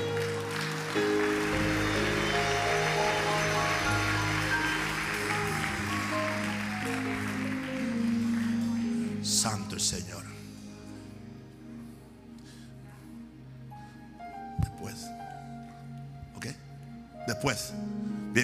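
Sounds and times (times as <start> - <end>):
large crowd applauding loudly: 0.0 - 9.6
sustained keyboard chords: 0.0 - 18.4
speech: 9.8 - 10.4, 17.4 - 18.4.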